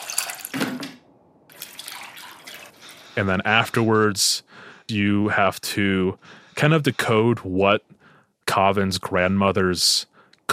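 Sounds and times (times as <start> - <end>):
water being mixed into thick tamarind paste: 0.0 - 3.2
speech: 3.2 - 10.5.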